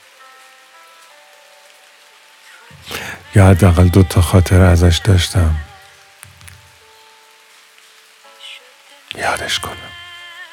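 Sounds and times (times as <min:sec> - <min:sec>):
steady rain pattering on a surface: 0:00.0 - 0:08.5, 0:09.1 - 0:10.0
speech: 0:02.8 - 0:05.7.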